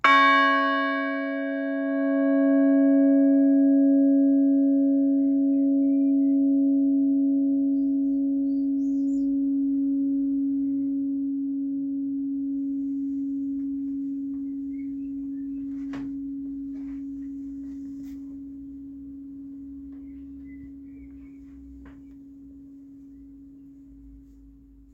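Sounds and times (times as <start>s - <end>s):
four church bells ringing: 0.0s - 24.9s.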